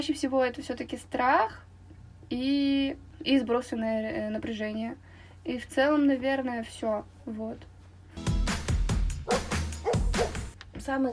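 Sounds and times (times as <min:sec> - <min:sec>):
speech: 0:00.0 - 0:01.7, 0:02.3 - 0:07.7, 0:10.8 - 0:11.1
dog barking: 0:09.3 - 0:10.4.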